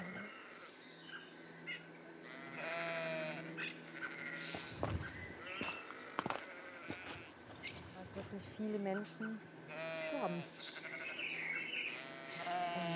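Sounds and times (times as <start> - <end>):
sheep bleating on a walking trail: 0.0 - 0.8, 2.2 - 7.4, 9.7 - 12.9
speech: 8.3 - 10.8.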